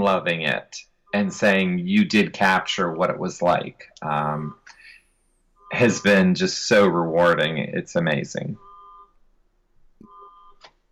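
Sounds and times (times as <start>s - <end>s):
speech: 0.0s - 4.6s, 5.7s - 8.6s
faint car alarm with steady electronic tones: 1.0s - 1.6s, 4.5s - 6.2s, 8.6s - 9.2s, 10.0s - 10.6s.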